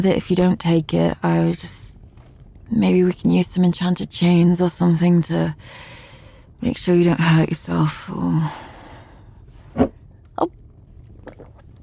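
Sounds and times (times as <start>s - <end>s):
speech: 0.0s - 2.0s, 2.7s - 6.0s, 6.6s - 8.7s, 9.8s - 10.6s
person gulping a drink: 11.0s - 11.8s.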